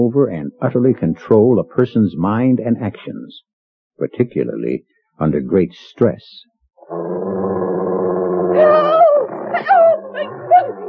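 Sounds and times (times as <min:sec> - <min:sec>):
speech: 0:00.0 - 0:07.4, 0:08.6 - 0:09.0
wolf growling and snarling: 0:06.8 - 0:10.8.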